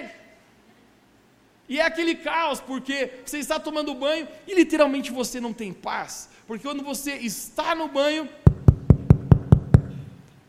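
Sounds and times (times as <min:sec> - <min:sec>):
speech: 0:01.7 - 0:08.4
knocking on a bathroom door: 0:08.5 - 0:10.0.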